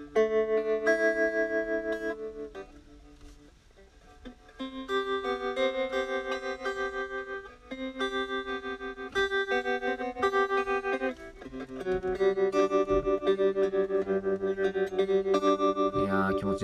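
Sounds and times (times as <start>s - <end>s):
sustained electric guitar chords played through a slow tremolo effect: 0.0s - 16.6s.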